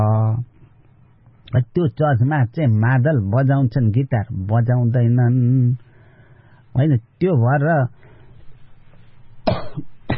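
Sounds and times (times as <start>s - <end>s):
speech: 1.6s - 5.8s, 6.8s - 8.0s
elderly man coughing: 9.5s - 10.1s.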